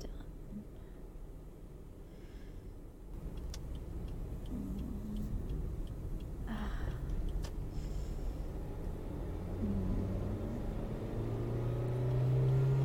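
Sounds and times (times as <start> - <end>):
faint clicks and ticks: 3.1 - 9.0
car driving fast on the road: 3.2 - 12.8.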